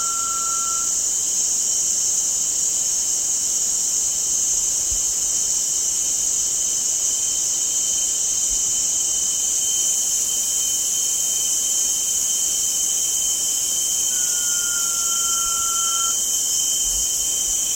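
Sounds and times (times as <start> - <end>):
blue-banded pitta whistle: 0.0 - 1.0, 12.1 - 17.7
loud continuous insect drone: 0.0 - 17.7.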